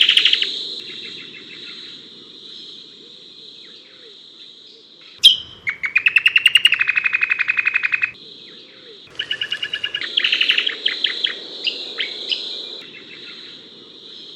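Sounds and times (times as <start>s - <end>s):
dark-brown honeyeater Lichmera incana song of chattering trills: 5.2s - 8.2s, 9.1s - 13.5s.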